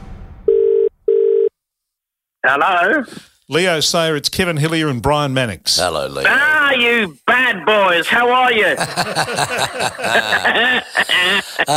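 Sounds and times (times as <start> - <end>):
telephone ringback tone: 0.5 - 1.5
speech: 2.4 - 11.7
laughter: 8.6 - 11.7.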